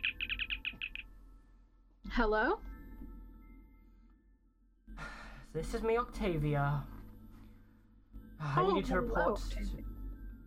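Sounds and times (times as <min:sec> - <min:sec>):
communicator chirp of short bright high beeping tones: 0:00.0 - 0:01.0
faint low hum: 0:00.0 - 0:10.4
speech: 0:02.2 - 0:02.7, 0:05.5 - 0:06.9, 0:08.4 - 0:09.9.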